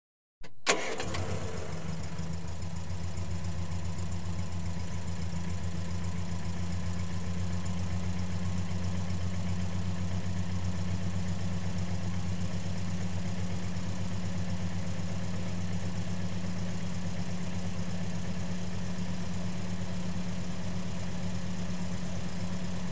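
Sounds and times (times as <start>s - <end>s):
car engine switching on outdoors: 0.4s - 6.7s
car engine switching off outdoors: 0.4s - 14.7s
car engine idling outdoors: 0.6s - 22.8s.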